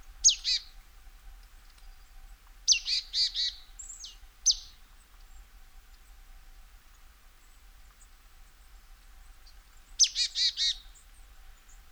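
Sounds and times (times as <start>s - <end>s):
marsh tit Poecile palustris calling: 0.2s - 0.7s, 2.7s - 4.9s, 9.5s - 11.8s.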